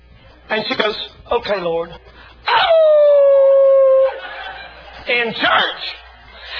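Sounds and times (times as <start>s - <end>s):
speech: 0.5s - 3.1s, 5.1s - 6.0s
person imitating a wolf howl: 2.5s - 4.2s
laughter: 3.8s - 6.5s.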